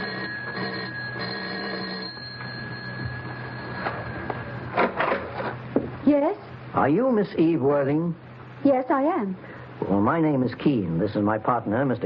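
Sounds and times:
studio apartment doorbell ringing in a long electric buzz: 0:00.0 - 0:05.5
speech: 0:06.1 - 0:12.0.

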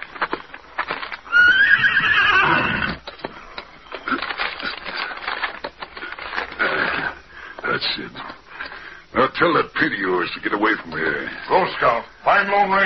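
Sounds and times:
horse hooves clip-clopping: 0:00.0 - 0:06.5
horse whinnying: 0:01.2 - 0:03.1
speech: 0:09.4 - 0:12.8.

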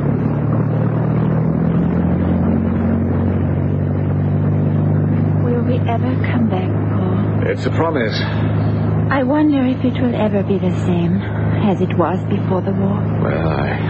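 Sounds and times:
motor torpedo boat engines roaring at full throttle: 0:00.0 - 0:13.8
speech: 0:07.5 - 0:13.8.

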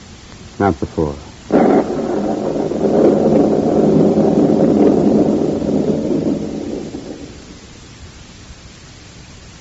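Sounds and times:
speech: 0:00.6 - 0:01.9
thunder rolling: 0:01.4 - 0:07.9.

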